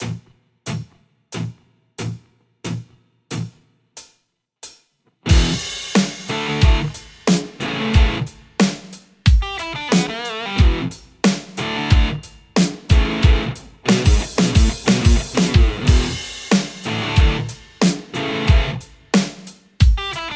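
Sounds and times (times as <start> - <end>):
Les Paul electric guitar with amp distortion: 5.3 - 8.5, 9.4 - 19.1.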